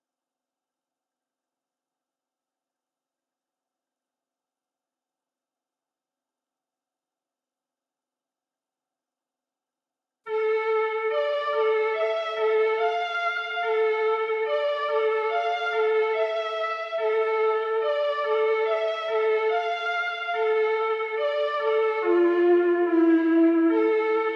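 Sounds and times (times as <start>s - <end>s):
flute melody loop in D minor at 143 BPM: 10.3s - 24.3s.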